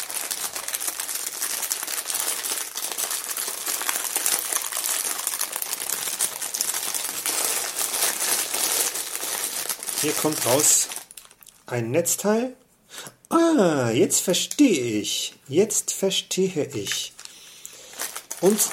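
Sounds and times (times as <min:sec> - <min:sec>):
plastic bag being opened, crinkling and rustling: 0:00.0 - 0:11.7, 0:16.7 - 0:18.7
speech: 0:10.0 - 0:10.8, 0:11.7 - 0:12.6, 0:13.3 - 0:17.2, 0:18.4 - 0:18.7.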